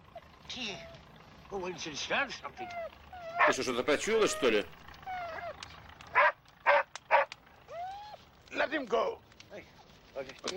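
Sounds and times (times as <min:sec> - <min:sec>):
speech: 0:00.5 - 0:04.8, 0:08.7 - 0:10.5
dog giving high whines: 0:02.4 - 0:08.3
dog barking sharply: 0:03.4 - 0:03.6, 0:06.1 - 0:07.3.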